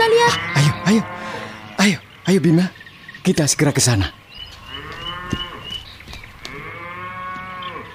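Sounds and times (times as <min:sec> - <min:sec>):
lost herd of cows mooing: 0:00.0 - 0:02.0, 0:04.6 - 0:07.9
speech: 0:00.3 - 0:01.2, 0:01.8 - 0:04.2.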